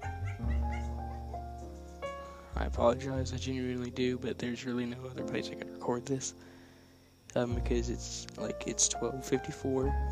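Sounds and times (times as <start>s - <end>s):
dog whining and yipping: 0.0s - 1.3s
speech: 2.6s - 6.5s, 7.3s - 10.0s.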